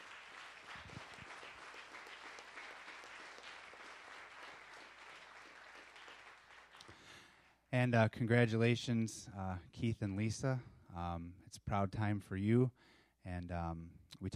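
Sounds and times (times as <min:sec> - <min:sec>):
audience applause: 0:00.0 - 0:07.0
speech: 0:07.7 - 0:14.3.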